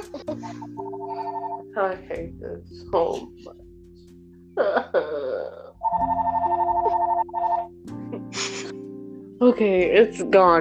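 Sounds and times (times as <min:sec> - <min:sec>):
phone ringtone chiming in a rapid repeating electronic pattern: 0:00.6 - 0:01.8, 0:05.8 - 0:07.8
speech: 0:01.8 - 0:03.6, 0:09.4 - 0:10.5.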